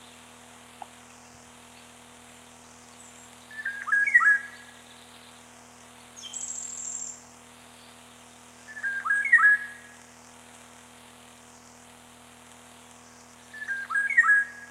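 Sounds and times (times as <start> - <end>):
Eurasian golden oriole song with fluty yodelling whistled phrases: 3.0 - 5.4, 6.2 - 7.2, 8.7 - 9.9, 13.5 - 14.7.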